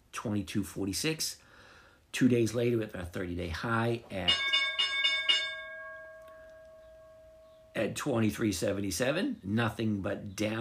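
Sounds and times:
speech: 0.2s - 1.4s, 2.1s - 4.5s, 7.9s - 10.5s
stock market opening bell ringing: 4.2s - 7.9s.

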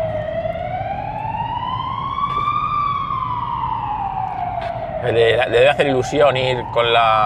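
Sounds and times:
ambulance siren wailing in a road tunnel: 0.0s - 7.2s
heavy rumble of traffic in a road tunnel: 0.0s - 7.2s
speech: 5.0s - 7.2s.

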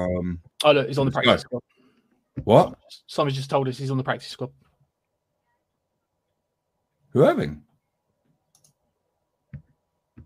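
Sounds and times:
speech: 0.1s - 1.7s, 2.4s - 4.6s, 7.1s - 7.7s
computer mouse clicking: 8.5s - 8.8s.

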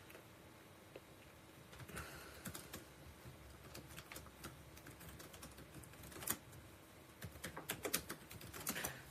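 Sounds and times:
typing on a computer keyboard: 1.7s - 6.6s, 7.2s - 9.0s.

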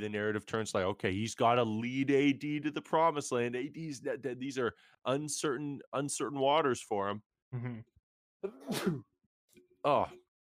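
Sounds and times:
speech: 0.0s - 9.1s, 9.8s - 10.2s
sneeze: 8.5s - 9.1s.

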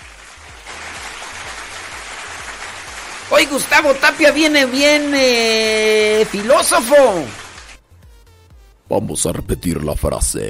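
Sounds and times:
dense applause: 0.0s - 7.8s
speech: 3.3s - 7.4s, 8.9s - 10.4s.

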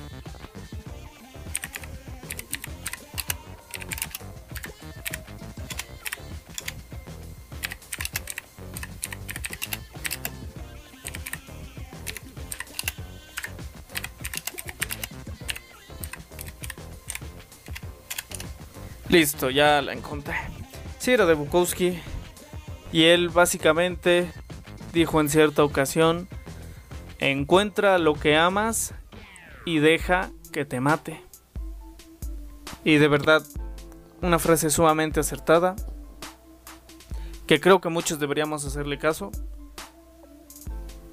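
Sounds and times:
typing on a mechanical keyboard: 1.5s - 6.8s, 7.6s - 10.4s, 11.0s - 11.4s, 12.0s - 18.5s
speech: 19.1s - 20.4s, 21.0s - 22.1s, 22.9s - 26.3s, 27.2s - 29.0s, 29.6s - 31.3s, 32.8s - 33.6s, 34.2s - 35.9s, 37.5s - 39.5s.

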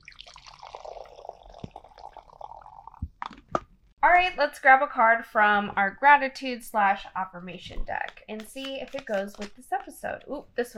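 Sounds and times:
lemon and strawberry apple cider vinegar beverage pouring into a glass: 0.0s - 3.2s
speech: 4.0s - 10.7s.

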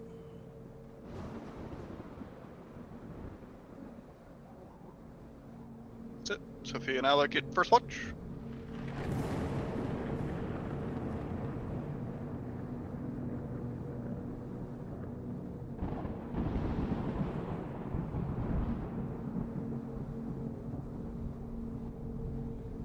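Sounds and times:
rolling thunder of a snowstorm: 1.0s - 4.2s, 8.4s - 22.8s
speech: 6.3s - 8.2s.

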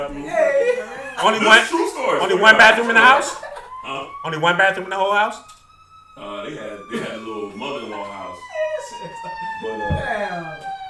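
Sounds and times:
speech: 0.0s - 0.4s, 1.2s - 5.5s
laughter: 0.0s - 4.2s, 6.8s - 9.2s
emergency vehicle sirens passing outside: 0.0s - 10.8s.

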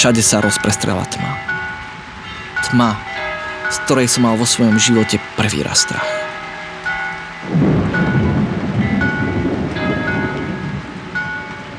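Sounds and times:
speech: 0.0s - 1.7s, 2.7s - 3.1s, 3.7s - 6.3s
deep rumble of thunder: 0.0s - 11.7s
heavy downpour: 0.0s - 11.7s.

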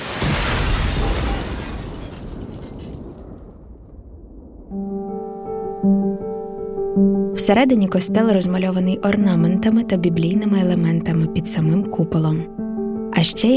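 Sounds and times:
artillery shell explosion: 0.0s - 4.7s
steady tonal music with low sustained notes: 4.7s - 13.5s
speech: 5.8s - 6.1s, 7.0s - 12.6s, 13.2s - 13.5s.

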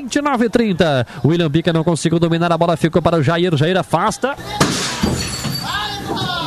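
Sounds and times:
speech: 0.0s - 5.2s
pane of glass shattering in a broadcast booth: 4.6s - 5.9s.

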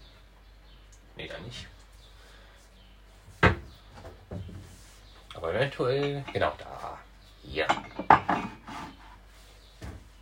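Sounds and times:
speech: 1.2s - 1.8s, 5.4s - 8.5s
wooden cupboard door opening and shutting: 3.4s - 3.7s
cups clinking while being put away: 7.6s - 8.7s.

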